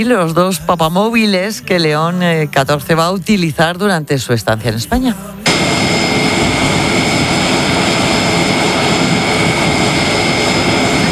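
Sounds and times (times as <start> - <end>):
speech: 0.0 - 5.8
Spanish Air Force transport plane engine roar landing in Madrid: 5.4 - 11.1.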